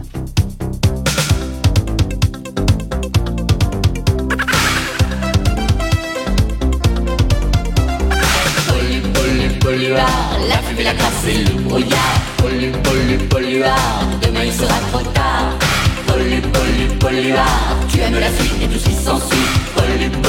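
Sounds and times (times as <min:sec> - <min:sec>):
upbeat instrumental cartoon theme song intro: 0:00.0 - 0:20.2
speech: 0:09.9 - 0:15.6, 0:16.2 - 0:20.2.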